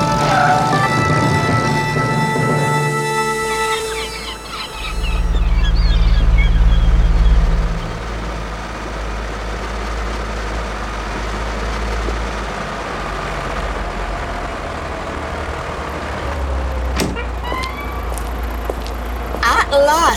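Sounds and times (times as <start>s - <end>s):
whining tonal sounds: 0.0s - 8.5s
car engine driving in reverse: 0.0s - 19.4s
steady noise: 18.4s - 20.1s.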